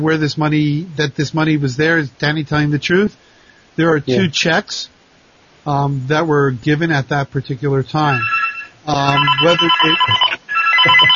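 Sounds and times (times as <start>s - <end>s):
speech: 0.0s - 3.2s, 3.8s - 4.9s, 5.6s - 10.2s, 10.8s - 11.1s
mobile phone ringtone playing a bright melodic electronic jingle: 8.1s - 11.1s.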